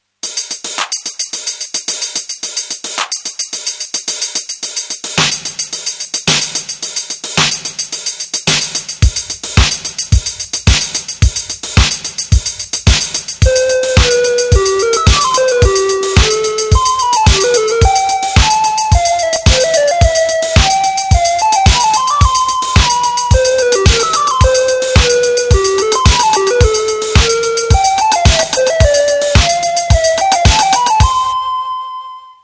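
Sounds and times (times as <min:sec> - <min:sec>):
TR-707 drum machine: 0:00.2 - 0:31.4
Casio VL1 electronic keyboard: 0:13.4 - 0:32.4.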